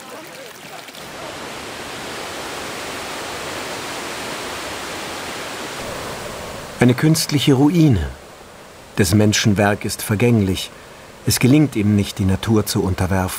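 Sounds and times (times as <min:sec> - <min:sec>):
rushing water flowing: 0:00.0 - 0:13.3
speech: 0:06.8 - 0:08.2, 0:09.0 - 0:13.3.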